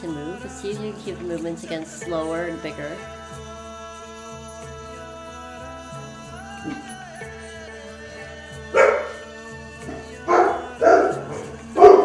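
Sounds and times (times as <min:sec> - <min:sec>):
soft sustained music: 0:00.0 - 0:12.0
speech: 0:00.5 - 0:03.4
dog barking in loud bursts: 0:08.8 - 0:09.2, 0:09.9 - 0:12.0.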